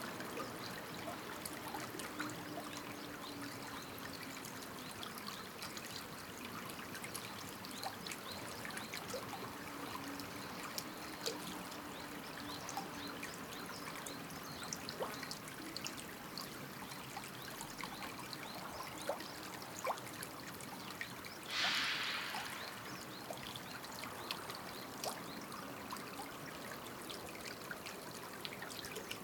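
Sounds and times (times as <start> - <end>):
small river babbling and trickling in the morning: 0.0 - 29.2
brief louder water splash or gurgle: 21.5 - 23.6.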